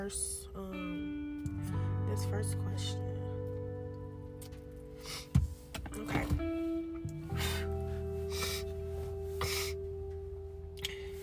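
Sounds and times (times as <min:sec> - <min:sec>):
speech: 0:00.0 - 0:01.1, 0:02.2 - 0:03.1
constant low electrical hum: 0:00.0 - 0:11.2
person sniffing: 0:08.3 - 0:08.8, 0:09.4 - 0:09.8.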